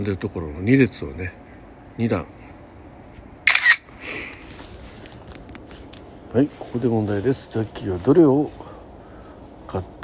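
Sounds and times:
speech: 0.0s - 1.4s, 2.0s - 2.4s, 6.3s - 8.6s, 9.7s - 10.0s
smartphone camera shutter click taking a photo of hot drinks: 3.5s - 3.9s.

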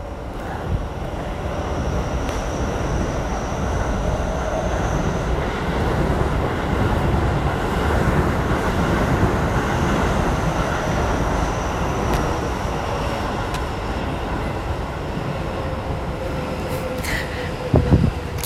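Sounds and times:
train rumbling past in the rain: 0.0s - 18.4s.

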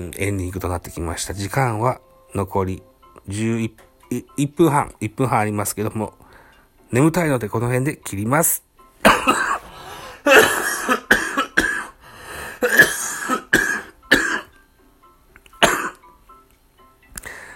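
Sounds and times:
speech: 0.0s - 6.2s, 6.9s - 9.5s
person coughing harshly with throat-clearing: 9.1s - 12.0s, 12.6s - 14.5s, 15.6s - 16.0s.

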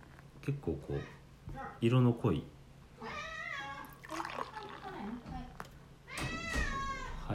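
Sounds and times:
speech: 0.5s - 2.6s
cat meowing: 3.0s - 4.7s, 6.1s - 7.3s.

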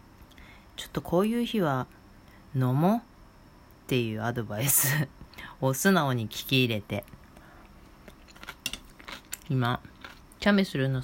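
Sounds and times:
speech: 1.0s - 3.1s, 3.9s - 7.2s, 9.5s - 11.0s
chewing and biting on a crunchy snack: 8.0s - 10.4s.

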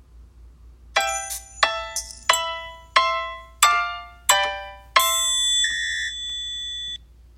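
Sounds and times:
short carefree jingle of bright bell-like notes: 1.0s - 5.7s.

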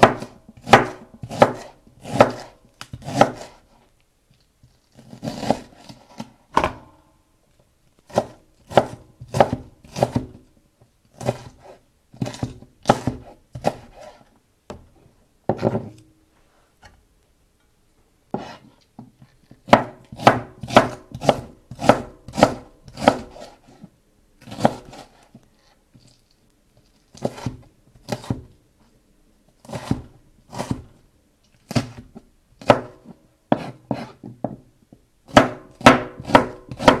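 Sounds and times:
knife chopping myoga and green onion for miso soup in a kitchen: 0.0s - 3.6s, 5.0s - 7.0s, 8.1s - 10.4s, 11.1s - 14.8s, 18.3s - 18.6s, 19.6s - 23.6s, 24.4s - 25.2s, 27.1s - 28.5s, 29.6s - 30.9s, 31.7s - 34.3s, 35.3s - 36.9s.

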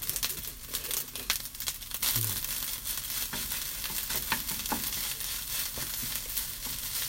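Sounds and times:
fried rice sizzling in a pan: 0.0s - 7.0s
wooden spatula scraping a pan while stir-frying rice: 2.4s - 7.0s.

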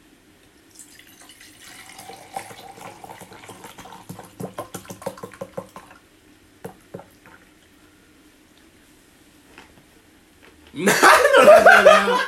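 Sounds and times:
barley tea pouring into a glass: 0.7s - 6.0s
laughter: 10.8s - 12.2s.

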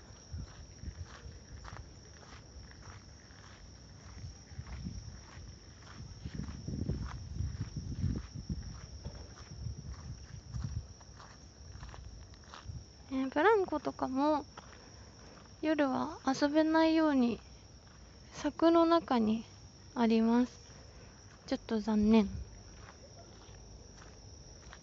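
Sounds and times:
footsteps walking through a park at night: 0.0s - 12.8s, 22.1s - 24.8s
speech: 13.3s - 14.6s, 15.6s - 17.5s, 18.4s - 20.6s, 21.5s - 22.4s.

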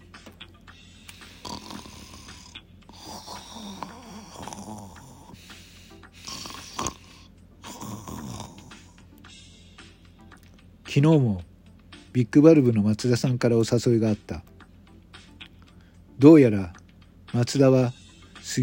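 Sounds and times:
steady low hum: 0.0s - 18.6s
two people snoring loudly: 1.2s - 9.0s
speech: 10.9s - 11.5s, 12.2s - 14.5s, 16.2s - 18.6s.

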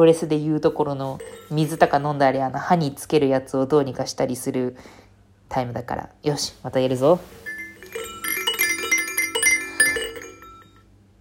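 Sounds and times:
speech: 0.0s - 8.0s
baby rattle being shaken: 1.2s - 2.2s, 7.3s - 10.8s.

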